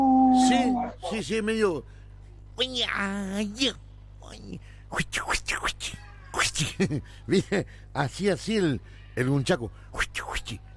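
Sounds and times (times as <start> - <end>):
person imitating cat-like martial arts cries: 0.0 - 1.2
speech: 1.1 - 2.0, 2.6 - 10.7.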